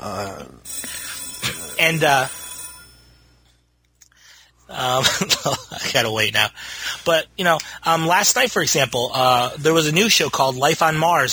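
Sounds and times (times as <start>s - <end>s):
telephone ringing: 0.7s - 3.4s
speech: 1.8s - 2.4s, 4.7s - 11.3s.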